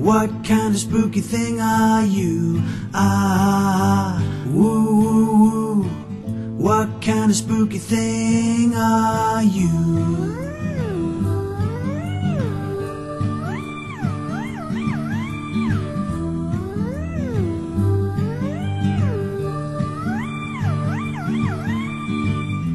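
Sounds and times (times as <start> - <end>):
speech: 0.2 - 5.1, 6.6 - 10.3
cat meowing: 10.2 - 22.7.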